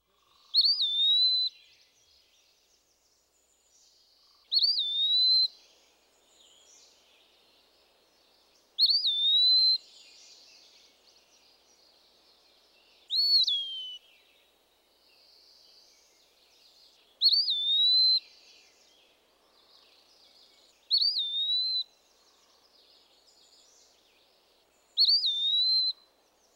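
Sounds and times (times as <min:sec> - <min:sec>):
Eastern Wood Pewee singing clear slurred whistled phrases: 0:00.5 - 0:01.8, 0:04.5 - 0:05.6, 0:08.8 - 0:09.9, 0:13.1 - 0:14.2, 0:17.2 - 0:18.4, 0:20.9 - 0:21.9, 0:25.0 - 0:26.1.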